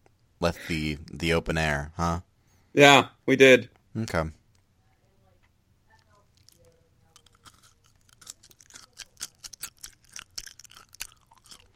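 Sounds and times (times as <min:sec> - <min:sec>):
low hum: 0:00.0 - 0:11.7
speech: 0:00.4 - 0:04.4
crisp crunchy chewing: 0:05.9 - 0:11.7.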